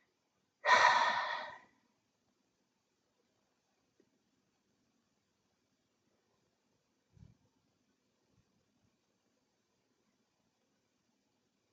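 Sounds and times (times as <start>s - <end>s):
deep breathy exhalation: 0.6s - 1.7s.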